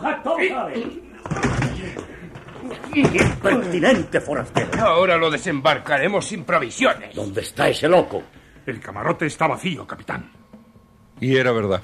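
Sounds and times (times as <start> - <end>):
speech: 0.4 - 10.4, 11.2 - 11.8
ship's cabin door forced open by breaking its bolt: 1.2 - 5.6.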